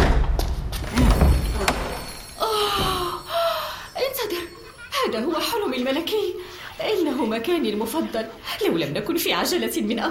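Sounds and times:
broom closet door slamming shut with a heavy thud: 0.0 - 2.2
broom closet door creaking open: 0.7 - 3.2
speech: 5.2 - 10.0.

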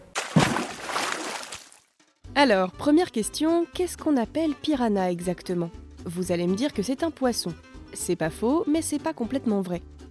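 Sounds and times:
loud splash of something plunging into water: 0.1 - 1.8
churning, bubbling water turbulence: 0.2 - 1.7
speech: 2.4 - 10.0.

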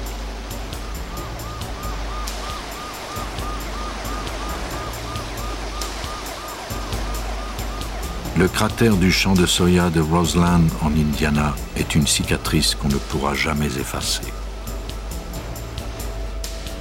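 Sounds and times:
steady rain at night in a soybean field: 0.0 - 16.7
wailing emergency siren after a plane crash: 0.8 - 11.4
speech: 8.4 - 14.4.

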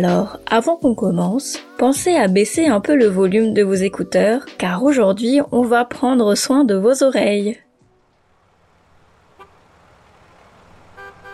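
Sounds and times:
speech: 0.0 - 7.6
steady traffic rumble: 2.2 - 11.3
car horns honking in traffic: 9.2 - 9.7, 10.8 - 11.3.

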